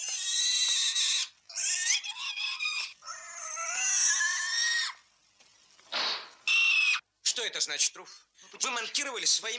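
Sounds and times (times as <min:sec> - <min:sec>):
pig squealing: 0:00.0 - 0:05.0, 0:06.0 - 0:07.0
speech: 0:07.4 - 0:09.5.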